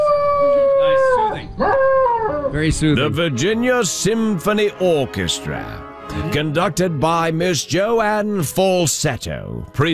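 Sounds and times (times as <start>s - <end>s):
dog howling: 0.0s - 2.7s
speech: 2.6s - 9.9s.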